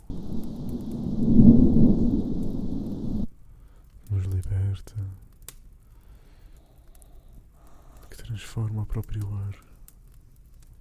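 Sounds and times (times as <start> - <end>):
deep rolling rumble of thunder: 0.0 - 3.3
faint hiss: 0.0 - 10.8
speech: 8.4 - 9.7.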